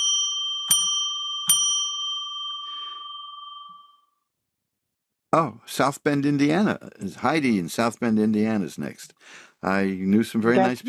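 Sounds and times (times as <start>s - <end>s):
bright bell struck to declare sacred space: 0.0s - 4.1s
speech: 5.4s - 10.8s.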